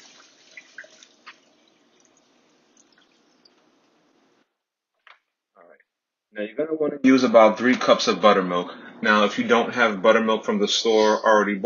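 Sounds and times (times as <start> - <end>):
water draining off chicken soaked in water, vinegar and lemon juice: 0.0 - 3.8
speech: 6.4 - 11.6.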